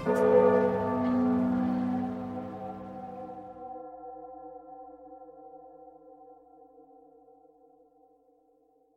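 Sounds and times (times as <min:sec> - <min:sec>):
ship's heart bell tolling: 0:00.0 - 0:03.8.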